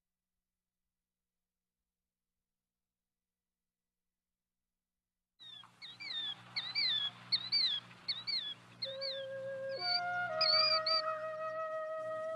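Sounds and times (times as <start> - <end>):
killdeer plover calling: 5.4 - 11.5.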